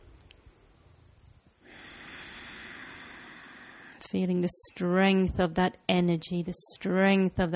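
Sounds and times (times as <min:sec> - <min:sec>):
soft breath in: 0:01.6 - 0:04.1
speech: 0:04.1 - 0:07.5.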